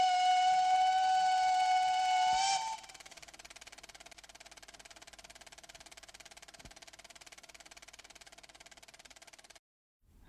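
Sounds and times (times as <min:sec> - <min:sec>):
historic steam train whistle: 0:00.0 - 0:03.1
steam train chuffing: 0:00.0 - 0:09.6.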